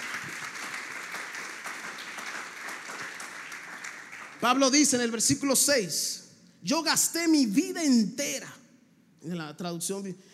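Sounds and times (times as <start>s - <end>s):
audience applauding: 0.0s - 5.0s
speech: 4.4s - 8.6s, 9.2s - 10.3s.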